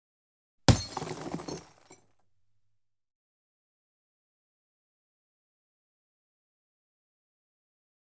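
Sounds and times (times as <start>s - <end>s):
TV screen smashed by a cricket ball: 0.7s - 2.0s.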